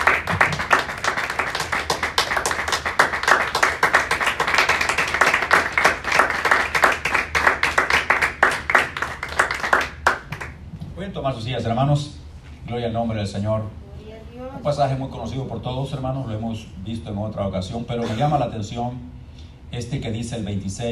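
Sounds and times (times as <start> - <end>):
audience clapping in a reverberant room: 0.0 - 10.6
speech: 11.4 - 13.8, 14.6 - 20.8.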